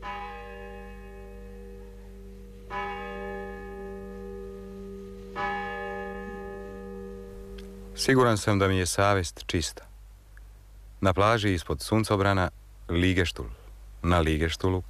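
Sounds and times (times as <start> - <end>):
large bell tolling carried by the wind near the sea: 0.0 - 8.3
steady low rumble: 0.0 - 14.8
speech: 8.0 - 9.9, 11.0 - 14.8.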